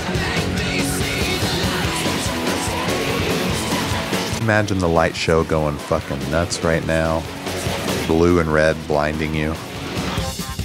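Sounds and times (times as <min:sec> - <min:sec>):
live industrial rock: 0:00.0 - 0:10.6
speech: 0:04.5 - 0:07.4, 0:08.1 - 0:09.7.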